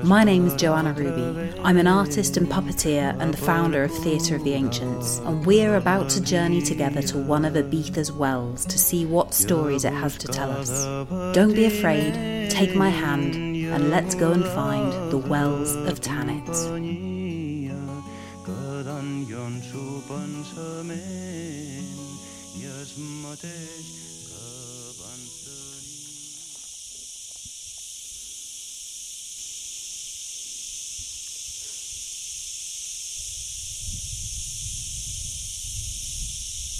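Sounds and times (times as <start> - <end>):
speech: 0.0 - 17.1
music: 0.0 - 25.9
cicadas buzzing: 0.0 - 36.7.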